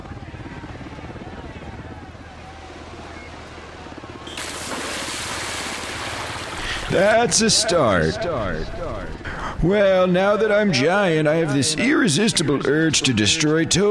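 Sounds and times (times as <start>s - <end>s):
Navy firefighting helicopter rotor chopping: 0.0s - 9.2s
speech: 6.9s - 13.8s.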